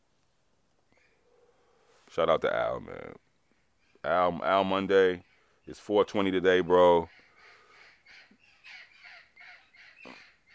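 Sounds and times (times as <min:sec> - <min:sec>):
speech: 0:02.1 - 0:03.3, 0:04.0 - 0:07.2
wild parrots squawking: 0:07.0 - 0:10.5.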